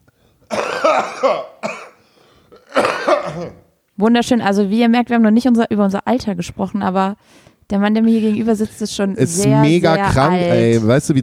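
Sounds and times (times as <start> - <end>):
person coughing: 0.5 - 3.7
speech: 0.9 - 1.5, 3.4 - 11.2.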